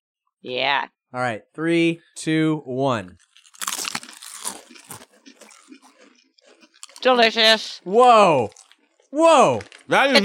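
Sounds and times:
speech: 0.4s - 3.3s, 7.0s - 10.2s
two people crunching snack chips: 3.2s - 7.4s, 8.4s - 10.2s
soft chewing crackles: 3.2s - 7.6s, 8.2s - 10.2s.

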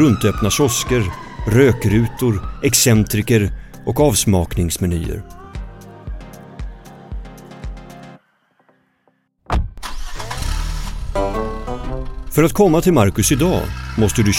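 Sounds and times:
speech: 0.0s - 5.4s, 12.4s - 14.3s
car engine cranking and starting then running: 9.7s - 14.3s.

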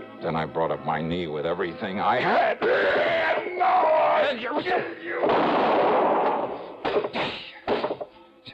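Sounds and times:
speech: 0.2s - 5.9s
loud gunshot at a cabin: 5.2s - 7.9s.

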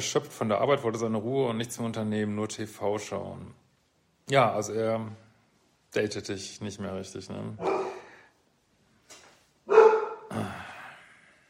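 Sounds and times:
speech: 0.0s - 3.6s, 4.3s - 5.2s, 5.9s - 7.9s
dog barking: 7.6s - 8.2s, 9.7s - 10.3s.

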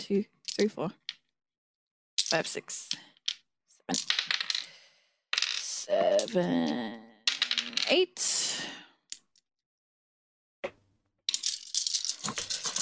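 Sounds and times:
speech: 0.0s - 1.1s, 2.2s - 3.1s, 5.9s - 8.8s
eight six-sided dice clattering and tumbling across a hard surface: 0.4s - 1.2s, 2.2s - 4.8s, 5.4s - 8.0s, 11.3s - 12.7s.

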